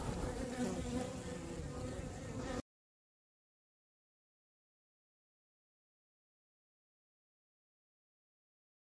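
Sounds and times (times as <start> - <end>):
honey bees droning inside a hive: 0.0 - 2.7.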